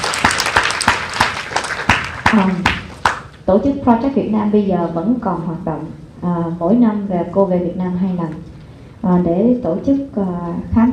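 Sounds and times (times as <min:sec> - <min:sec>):
audience applause at a parenting talk: 0:00.0 - 0:03.3
speech: 0:02.3 - 0:02.7, 0:03.5 - 0:10.9.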